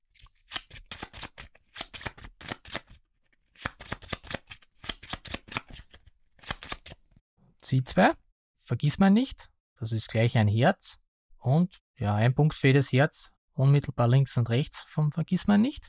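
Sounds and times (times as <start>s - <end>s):
playing cards from a flower-themed card game being shuffled: 0.1s - 7.0s
speech: 7.7s - 15.8s.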